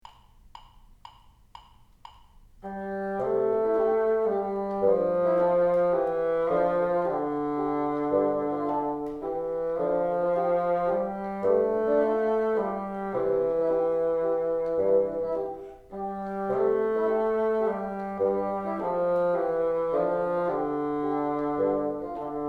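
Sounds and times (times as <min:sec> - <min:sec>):
bassoon: 0:02.6 - 0:22.4.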